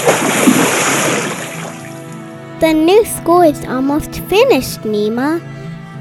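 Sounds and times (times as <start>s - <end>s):
splash of someone jumping into a pool: 0.0s - 1.9s
pool water churning and spraying: 0.0s - 2.1s
speech: 2.6s - 5.6s.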